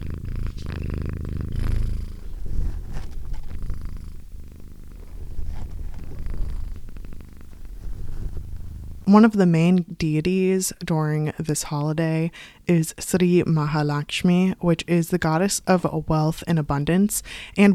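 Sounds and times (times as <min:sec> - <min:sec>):
cat purring: 0:00.0 - 0:09.1
soft rustling: 0:00.0 - 0:09.1
speech: 0:09.1 - 0:17.7.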